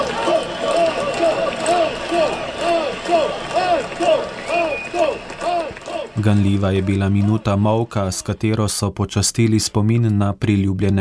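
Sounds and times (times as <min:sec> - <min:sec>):
crowd of participants on a square in Slovenia chanting a nickname: 0:00.0 - 0:07.6
crowd of participants on a square in Slovenia applauding: 0:00.0 - 0:08.5
speech: 0:06.2 - 0:11.0.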